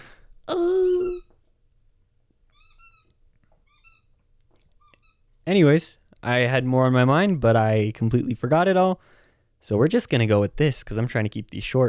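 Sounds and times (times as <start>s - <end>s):
dog squeaking a squeaky toy: 1.0s - 1.3s, 2.5s - 5.3s
speech: 5.5s - 11.8s.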